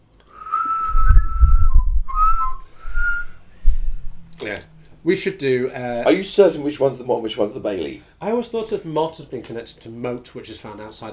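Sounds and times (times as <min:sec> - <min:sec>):
person whistling a short simple tune: 0:00.3 - 0:03.4
speech: 0:04.5 - 0:11.1.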